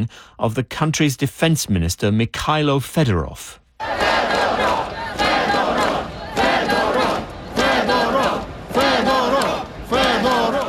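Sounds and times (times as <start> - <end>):
speech: 0.0 - 4.9
large protest crowd chanting a name in unison: 3.8 - 10.6.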